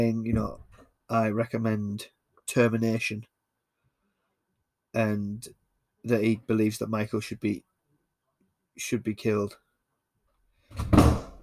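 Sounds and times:
speech: 0.0 - 3.3, 4.9 - 7.7, 8.8 - 9.6, 10.7 - 11.2
door banging shut with a heavy thud: 10.7 - 11.4.

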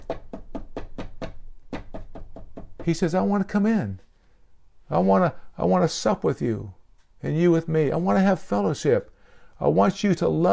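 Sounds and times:
firm knocking on a door: 0.0 - 3.0
speech: 2.8 - 4.0, 4.9 - 10.5.

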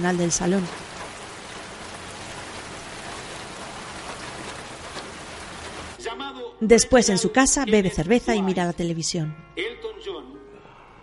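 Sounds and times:
speech: 0.0 - 0.9, 6.6 - 9.7
rain falling on a street at night: 0.0 - 6.1.

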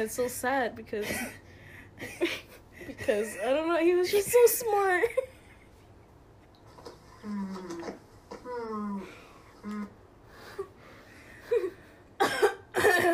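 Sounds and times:
speech: 0.0 - 1.4, 2.0 - 5.3, 7.2 - 8.0
person clearing throat: 12.2 - 13.1
person coughing: 12.2 - 13.1.

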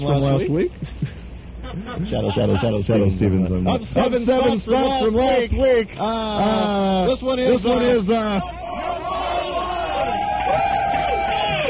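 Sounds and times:
speech: 0.0 - 8.6
large crowd cheering and whooping: 7.5 - 11.6.

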